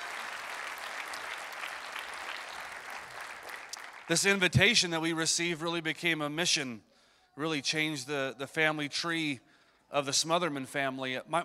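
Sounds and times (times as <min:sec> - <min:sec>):
audience applauding: 0:00.0 - 0:04.4
speech: 0:04.1 - 0:11.4.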